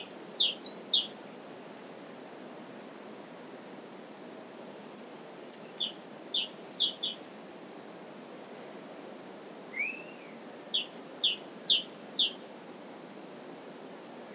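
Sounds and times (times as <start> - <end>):
great tit Parus major singing: 0.0 - 1.1, 5.6 - 7.3, 9.8 - 13.3.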